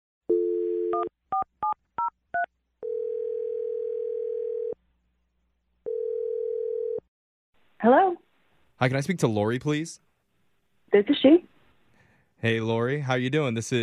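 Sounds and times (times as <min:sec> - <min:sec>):
speech: 0:01.0 - 0:01.5, 0:07.8 - 0:10.1, 0:10.9 - 0:11.5, 0:12.4 - 0:13.8
telephone dial tone: 0:02.4 - 0:04.8, 0:05.9 - 0:07.0
telephone ringback tones: 0:02.8 - 0:04.8, 0:05.9 - 0:07.0.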